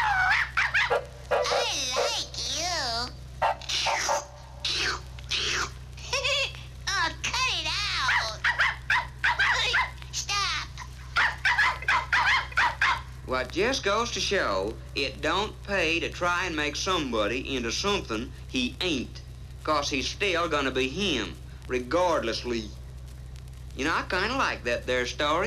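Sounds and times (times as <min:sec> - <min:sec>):
small puppy-like dog yapping and whining: 0:00.0 - 0:02.4, 0:08.1 - 0:10.1, 0:11.1 - 0:13.1
steady low hum: 0:00.0 - 0:25.4
speech: 0:00.9 - 0:01.1, 0:13.5 - 0:22.8, 0:23.8 - 0:25.4.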